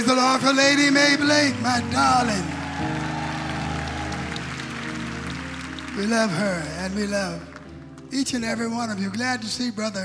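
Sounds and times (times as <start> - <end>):
speech: 0.0 - 3.1, 6.0 - 7.5, 8.1 - 10.0
audience clapping: 0.0 - 9.4.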